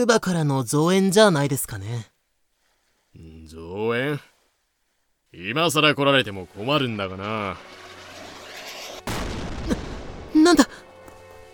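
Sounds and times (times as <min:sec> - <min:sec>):
speech: 0:00.0 - 0:02.1, 0:03.2 - 0:04.3, 0:05.3 - 0:07.8, 0:10.5 - 0:10.8
cannon fire from a suspicious ship at sea: 0:09.0 - 0:10.4.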